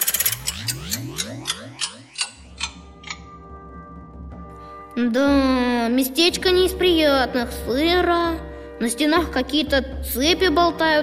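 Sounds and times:
old clock ticking: 0:00.0 - 0:03.4
rising swept tones: 0:00.0 - 0:04.5
speech: 0:05.0 - 0:11.0.

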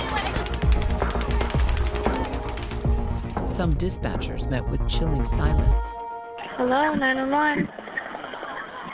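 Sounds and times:
rapid automatic gunfire fired into a concert crowd: 0:00.0 - 0:03.2
speech: 0:03.6 - 0:07.8.

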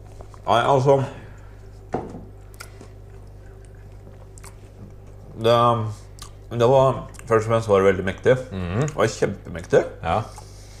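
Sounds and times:
low hum: 0:00.0 - 0:10.7
speech: 0:00.5 - 0:01.2, 0:05.4 - 0:10.4
person chewing a bite of soft chocolate dessert: 0:02.3 - 0:05.4, 0:06.0 - 0:07.4.

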